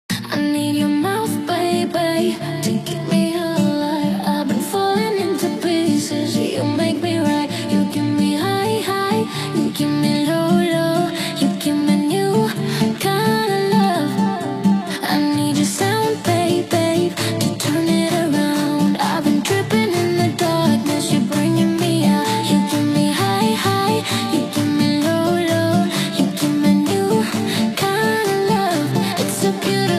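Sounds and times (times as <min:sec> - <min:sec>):
dirty noise house music: 0:00.3 - 0:29.9.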